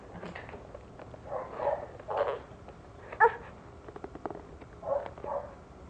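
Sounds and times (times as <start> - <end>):
dog barking: 1.2 - 2.4, 3.2 - 3.5, 4.8 - 5.6.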